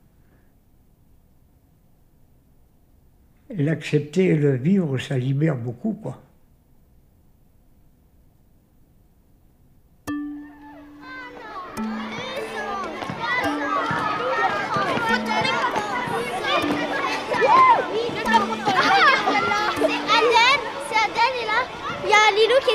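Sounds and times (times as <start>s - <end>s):
speech: 3.5s - 6.2s
children shouting and squealing playing tag in a playground: 10.3s - 22.7s.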